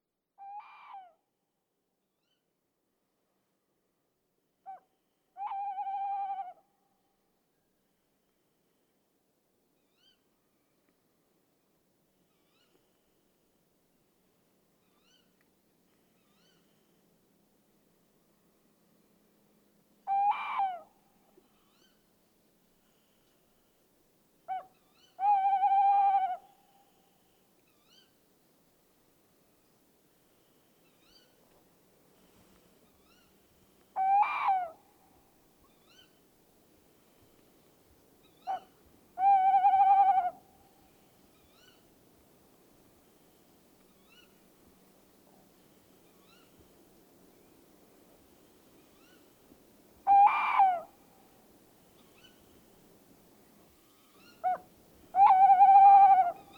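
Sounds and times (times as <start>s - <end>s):
Strix aluco Eurasian tawny owl: 5.4s - 6.6s, 20.1s - 20.9s, 24.5s - 26.5s, 34.0s - 34.8s, 35.7s - 36.2s, 38.2s - 40.4s, 41.3s - 41.8s, 43.9s - 44.4s, 46.1s - 46.6s, 48.8s - 49.3s, 50.0s - 51.0s, 52.0s - 52.6s, 53.8s - 56.5s.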